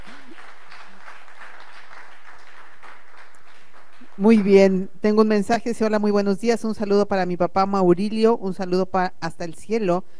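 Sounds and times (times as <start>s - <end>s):
group applauding: 0.0s - 4.8s
speech: 4.2s - 10.1s.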